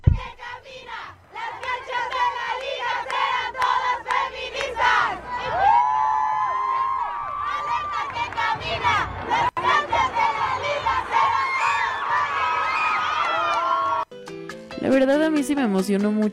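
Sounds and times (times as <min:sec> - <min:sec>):
large crowd of women football fans chanting in unison in a stadium: 0:00.0 - 0:05.9, 0:07.4 - 0:12.7
football fans cheering and whooping: 0:05.3 - 0:08.4, 0:11.0 - 0:14.1
speech: 0:15.0 - 0:16.3.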